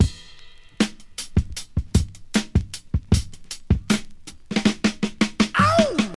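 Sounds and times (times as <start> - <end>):
drum loop with kick tuned to E: 0.0 - 6.1.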